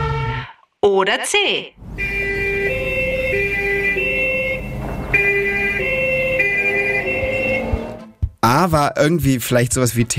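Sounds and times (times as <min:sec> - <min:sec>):
speech: 0:00.8 - 0:02.1, 0:08.5 - 0:10.1
low rumble of traffic: 0:01.8 - 0:08.0
two-tone police siren: 0:01.8 - 0:08.1.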